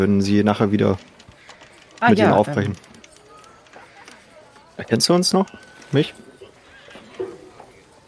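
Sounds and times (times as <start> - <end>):
speech: 0.0 - 1.2, 2.0 - 2.9, 4.8 - 6.3
horse whinnying: 6.4 - 7.5.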